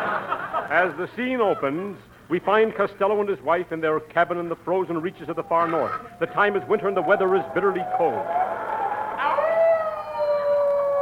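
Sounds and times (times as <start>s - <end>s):
laughter: 0.0s - 1.8s
speech: 0.7s - 8.5s
wolf howling: 8.8s - 10.9s.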